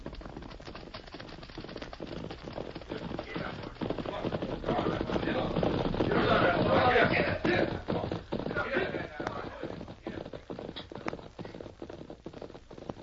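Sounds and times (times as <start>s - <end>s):
dense overlapping hoofbeats of horses along a trail: 0.0s - 13.0s.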